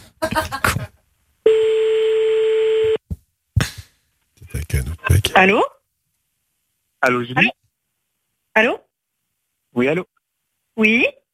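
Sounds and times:
speech: 0.3s - 0.6s, 5.4s - 5.8s, 7.0s - 7.6s, 8.6s - 8.8s, 9.8s - 10.1s, 10.8s - 11.2s
telephone call ring tone: 1.5s - 3.0s.

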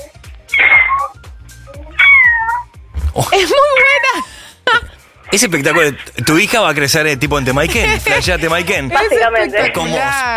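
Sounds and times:
person imitating a cat meowing: 0.6s - 2.7s
laughter: 3.2s - 4.9s, 7.4s - 8.6s
speech: 3.2s - 10.3s.

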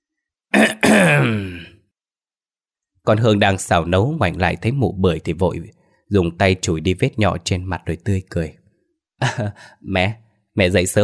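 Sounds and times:
older woman clearing her throat in a kitchen: 0.6s - 1.7s
speech: 1.0s - 1.5s, 3.1s - 8.6s, 9.2s - 11.0s.

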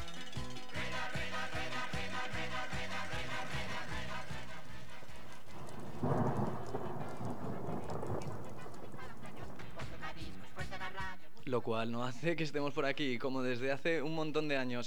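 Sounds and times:
rain falling: 0.0s - 11.4s
speech: 11.5s - 14.8s.

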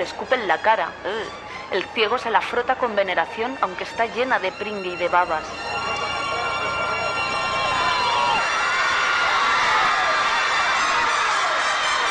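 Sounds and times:
speech: 0.0s - 5.8s
large crowd shouting and cheering: 5.5s - 12.0s.

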